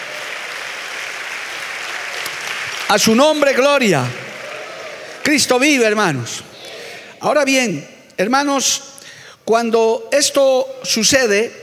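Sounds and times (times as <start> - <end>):
church congregation applauding during a service: 0.0 - 7.2
speech: 2.9 - 4.2, 5.2 - 6.5, 7.2 - 8.9, 9.5 - 11.6.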